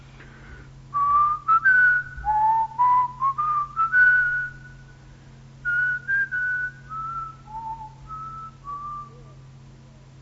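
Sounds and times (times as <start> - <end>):
faint low hum: 0.0 - 10.1
woman decorating a church softly whistling a slow old revival hymn: 1.0 - 4.8, 5.7 - 9.4.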